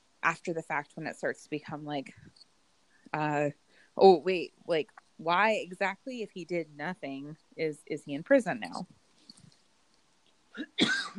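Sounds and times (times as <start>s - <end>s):
speech: 0.2s - 2.4s, 3.1s - 9.0s, 10.6s - 11.1s
quiet breathing: 2.1s - 4.0s
person coughing to clear the throat: 10.6s - 11.1s.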